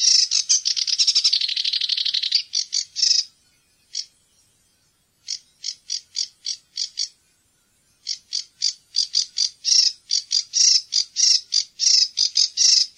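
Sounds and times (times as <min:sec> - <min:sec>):
Sedge warbler jerky song of churring chatter and harsh clicking notes: 0:00.0 - 0:12.9.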